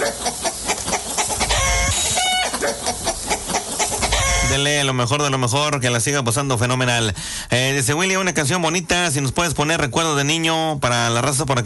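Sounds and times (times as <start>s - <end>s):
flock of hens clucking: 0.0s - 4.6s
speech: 4.6s - 11.6s.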